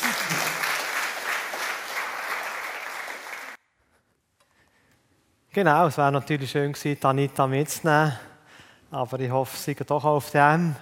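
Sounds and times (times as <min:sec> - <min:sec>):
audience clapping: 0:00.0 - 0:03.6
speech: 0:05.5 - 0:08.3, 0:08.9 - 0:10.8.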